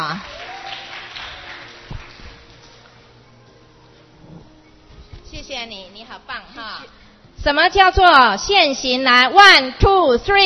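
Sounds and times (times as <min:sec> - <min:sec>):
room full of people clapping: 0:00.0 - 0:02.8
speech: 0:05.5 - 0:10.4.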